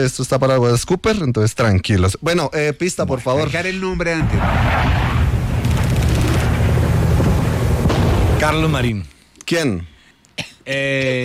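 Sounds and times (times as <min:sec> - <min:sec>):
speech: 0:00.0 - 0:05.2, 0:08.4 - 0:11.2
heavy booms and rumbling explosions in a war soundscape: 0:04.2 - 0:08.9
machine-gun fire: 0:05.3 - 0:08.9.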